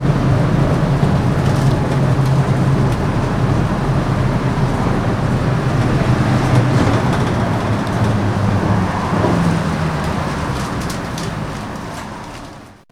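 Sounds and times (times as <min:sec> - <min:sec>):
bus stopping: 0:00.0 - 0:12.9.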